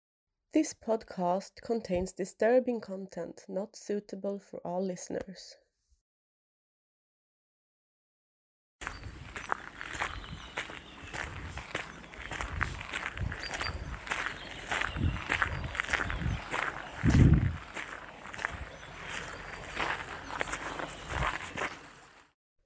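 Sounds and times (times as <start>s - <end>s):
speech: 0.5s - 5.6s
footsteps crunching over a gritty surface: 8.8s - 22.3s.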